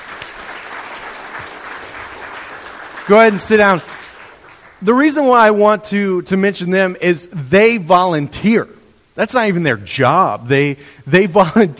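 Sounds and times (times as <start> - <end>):
church congregation applause: 0.0 - 5.4
speech: 3.1 - 4.0, 4.8 - 11.7.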